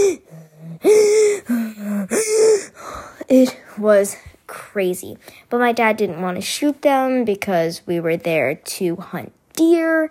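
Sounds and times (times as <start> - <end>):
voice imitating panicked gasping breathing: 0.0 - 3.3
speech: 3.3 - 10.0.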